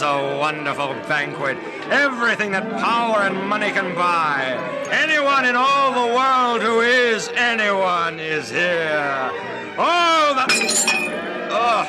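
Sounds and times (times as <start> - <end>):
speech: 0.0 - 11.8
drinking glass breaking: 10.5 - 11.2
ringing tinkle of glass shards: 10.5 - 11.2.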